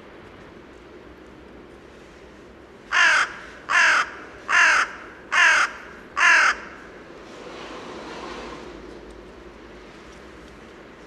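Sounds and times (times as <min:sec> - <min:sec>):
carrion crow Corvus corone giving harsh hoarse caws: 0:02.9 - 0:06.9.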